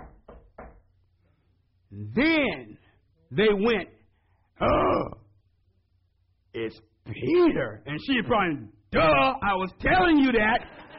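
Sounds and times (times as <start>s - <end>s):
dull resonant knocking on a door: 0.0s - 0.9s
speech: 2.0s - 2.7s, 3.3s - 4.0s, 4.6s - 5.2s, 6.6s - 10.8s.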